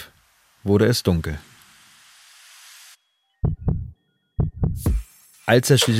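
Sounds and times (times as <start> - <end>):
brief wash of hiss: 0.0 - 3.0, 4.9 - 5.9
speech: 0.6 - 1.5, 5.5 - 5.9
strong deep thudding heartbeat: 3.4 - 5.0.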